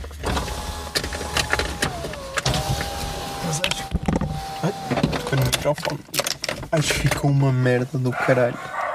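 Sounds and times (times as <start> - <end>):
car power windows whirring open: 0.2 - 5.7
speech: 5.7 - 8.7.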